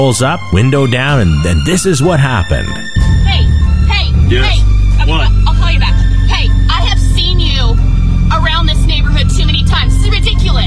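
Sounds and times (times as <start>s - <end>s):
speech: 0.0s - 3.4s, 4.3s - 5.9s
loud car engine revving and rumbling: 3.0s - 10.6s.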